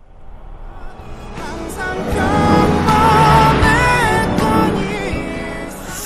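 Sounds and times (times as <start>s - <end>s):
car whooshing past at high speed: 0.0s - 6.0s
loud music blaring from a passing car: 1.3s - 6.0s.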